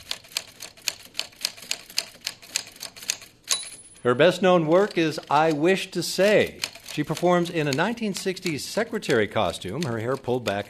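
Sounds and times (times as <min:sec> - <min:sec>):
manual typewriter keys striking: 0:00.0 - 0:03.6, 0:04.7 - 0:10.6
speech: 0:04.0 - 0:10.6.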